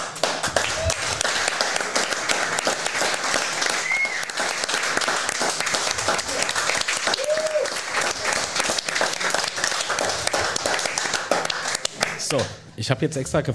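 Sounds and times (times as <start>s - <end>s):
live audience applause: 0.0s - 12.4s
faint audience whistles or cheers: 3.7s - 4.4s, 7.1s - 7.8s
speech: 12.4s - 13.5s.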